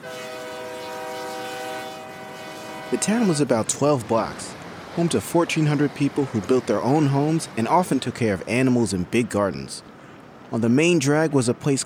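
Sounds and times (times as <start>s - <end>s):
train horn blaring in a sustained steady chord: 0.0s - 3.6s
rumble of a passing train: 0.0s - 10.6s
speech: 2.9s - 9.9s, 10.5s - 11.8s.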